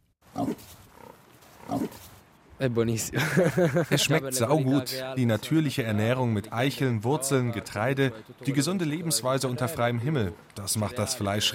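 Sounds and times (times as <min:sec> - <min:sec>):
faint outdoor noise: 0:00.0 - 0:11.5
semi-wild black Nebrodi pigs grunting: 0:00.3 - 0:02.0
speech: 0:00.4 - 0:00.8, 0:02.6 - 0:11.5
laughter: 0:03.1 - 0:04.8.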